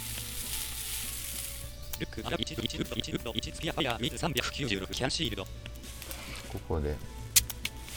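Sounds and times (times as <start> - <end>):
fish grilling in a video game: 0.0 - 5.3
speech: 2.0 - 5.8, 6.5 - 7.2.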